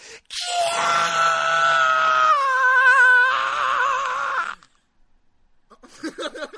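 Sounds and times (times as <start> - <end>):
person imitating shrill screams of frightened girls: 0.3 - 4.8.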